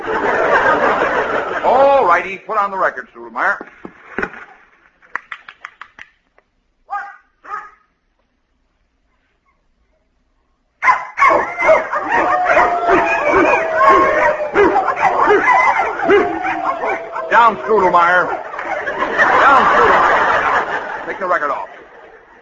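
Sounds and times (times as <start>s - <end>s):
laughter: 0.0s - 2.3s, 11.4s - 22.4s
speech: 2.2s - 3.9s, 17.5s - 18.5s, 21.2s - 21.7s
dog yips and whines: 6.9s - 7.8s, 10.8s - 17.4s
many dogs barking and yelping: 6.9s - 7.9s, 10.8s - 21.1s.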